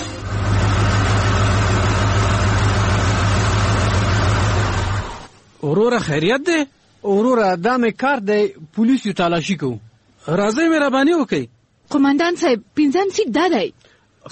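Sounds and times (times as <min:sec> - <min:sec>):
car pulling up and engine idling: 0:00.2 - 0:05.3
speech: 0:05.7 - 0:14.3.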